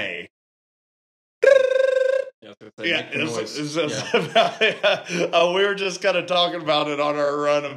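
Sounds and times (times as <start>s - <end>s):
voice imitating a harsh buzzing hotel phone ring: 1.4s - 2.3s
laughter: 2.8s - 7.3s
speech: 2.8s - 7.7s.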